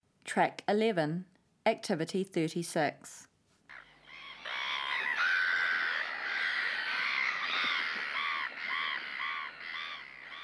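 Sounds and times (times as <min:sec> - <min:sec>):
speech: 0:00.3 - 0:03.3
chorus of harsh gull calls: 0:03.7 - 0:10.4.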